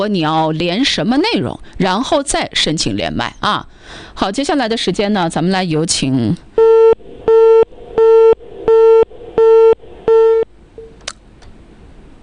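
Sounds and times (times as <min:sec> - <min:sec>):
speech: 0:00.0 - 0:07.4
phone busy tone beeps after dropped call: 0:06.6 - 0:11.0.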